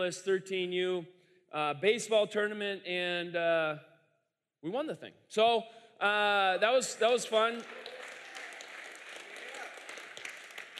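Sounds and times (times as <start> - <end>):
speech: 0.0 - 3.9, 4.6 - 7.9
crowd applauding: 6.7 - 10.7.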